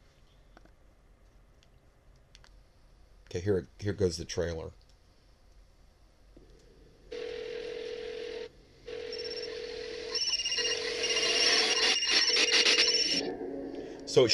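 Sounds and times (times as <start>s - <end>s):
speech: 3.3s - 4.8s, 14.2s - 14.3s
phones ringing with bright electronic tone in a movie trailer: 7.1s - 13.3s
rising clattery noise: 8.9s - 13.3s.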